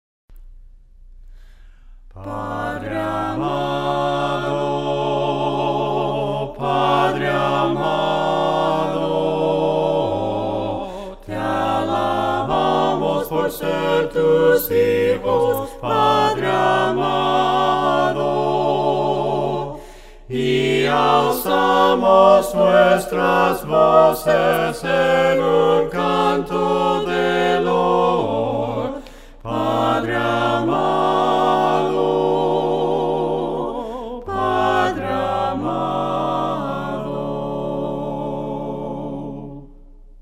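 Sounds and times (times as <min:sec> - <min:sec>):
voices singing hymns a cappella: 0:02.1 - 0:40.0.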